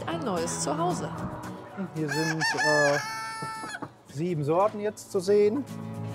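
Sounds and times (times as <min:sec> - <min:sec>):
speech: 0:00.2 - 0:03.6, 0:04.2 - 0:05.9
flock of excited chickens clucking and squawking: 0:02.0 - 0:04.0.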